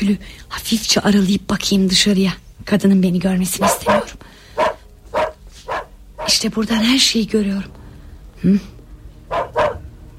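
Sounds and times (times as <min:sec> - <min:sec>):
speech: 0:00.0 - 0:04.3, 0:06.4 - 0:07.8, 0:08.4 - 0:08.8
dogs barking as police arrive at a house: 0:03.6 - 0:06.5, 0:09.3 - 0:10.1.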